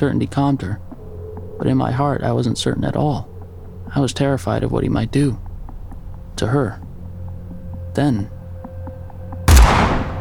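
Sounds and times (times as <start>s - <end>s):
speech: 0.0s - 0.9s, 1.6s - 3.3s, 3.9s - 5.4s, 6.4s - 6.8s, 8.0s - 8.4s
shotgun blast: 9.5s - 10.1s.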